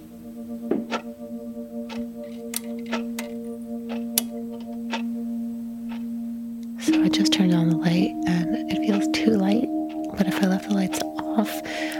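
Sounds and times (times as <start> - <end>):
clock ticking loudly at night in a quiet home: 0.7 - 1.2, 1.8 - 5.2, 5.9 - 6.1, 6.8 - 11.9.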